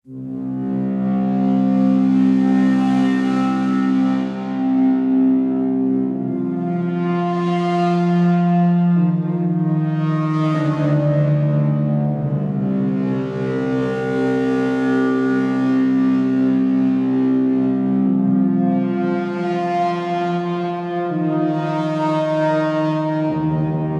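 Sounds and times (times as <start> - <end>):
solitary tonal atmospheric drone in C minor: 0.1 - 23.9.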